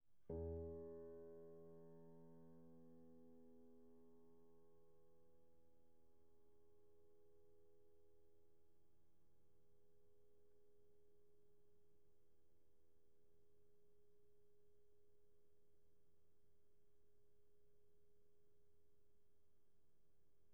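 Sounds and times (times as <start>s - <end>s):
pianissimo piano note E2: 0.3s - 3.4s.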